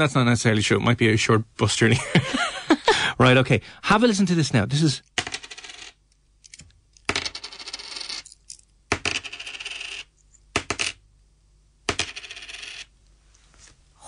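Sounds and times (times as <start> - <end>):
speech: 0.0 - 2.6, 3.2 - 5.1
coins dropping with a bright metallic clink and rattle: 5.2 - 11.0, 11.9 - 12.9.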